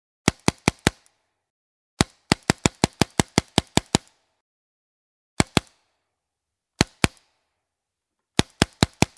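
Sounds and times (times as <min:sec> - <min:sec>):
paintball: 0:00.2 - 0:01.3, 0:02.0 - 0:04.4, 0:05.4 - 0:06.0, 0:06.8 - 0:07.6, 0:08.4 - 0:09.1.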